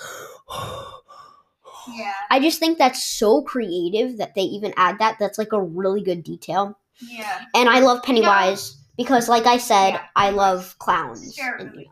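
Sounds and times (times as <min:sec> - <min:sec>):
voice imitating heavy rasping breathing through a mask: 0:00.0 - 0:02.1
speech: 0:01.8 - 0:11.8.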